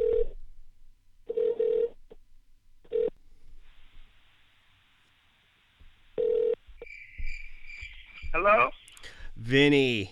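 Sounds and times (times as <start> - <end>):
outgoing phone call ringback tone: 0.0 - 0.4, 1.3 - 2.0, 2.9 - 3.2, 6.2 - 6.6
phone line hiss: 6.2 - 6.6
speech: 8.4 - 8.8, 9.4 - 10.0.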